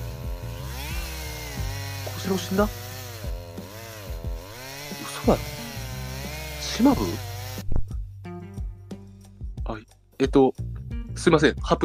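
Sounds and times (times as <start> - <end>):
chainsaw engine revving: 0.0 - 7.7
speech: 2.2 - 2.8, 5.3 - 5.6, 6.8 - 7.3, 10.2 - 10.6, 11.2 - 11.8.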